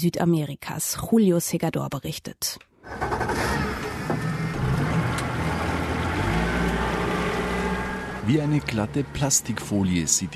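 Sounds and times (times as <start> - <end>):
speech: 0.0 - 3.7, 8.3 - 10.3
speedboat motor roaring on the Xingu River in Amazonia: 4.1 - 10.3.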